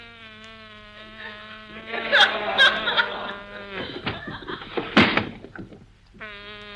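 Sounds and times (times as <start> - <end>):
bee buzzing: 0.0 - 5.0, 6.1 - 6.7
laughter: 1.1 - 5.0
sharp thump: 4.0 - 5.6.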